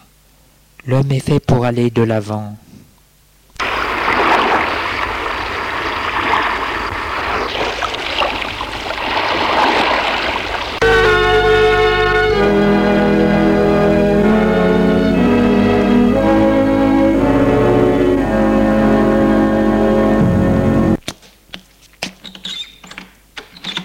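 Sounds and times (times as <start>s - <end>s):
speech: 0.8s - 2.6s
rough cold sea waves churning: 3.6s - 11.2s
sustained musical tones: 10.8s - 21.0s.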